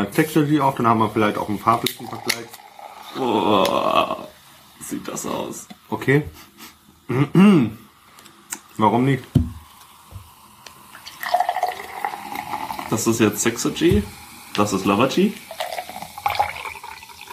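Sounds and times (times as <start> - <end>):
speech: 0.1 - 7.8, 8.8 - 9.6, 12.9 - 15.5
drink pouring into a glass: 1.2 - 4.3, 9.6 - 17.3.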